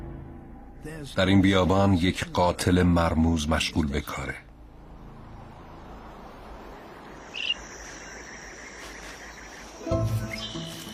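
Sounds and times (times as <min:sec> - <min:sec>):
crickets and insects droning in a desert: 0:00.0 - 0:10.9
speech: 0:00.8 - 0:04.5
shrike giving a short harsh buzzy call in a desert: 0:06.7 - 0:10.9.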